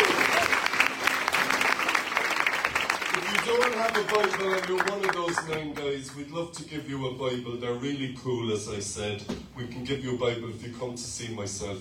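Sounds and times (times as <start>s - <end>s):
audience applause: 0.0s - 5.8s
speech: 3.5s - 11.7s.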